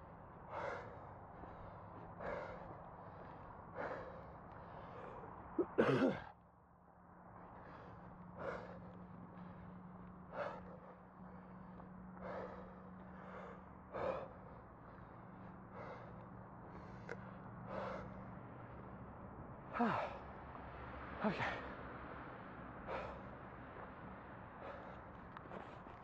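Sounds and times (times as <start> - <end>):
faint slow breathing: 0.0 - 26.0
low constant hum: 0.0 - 26.0
speech: 5.6 - 6.3.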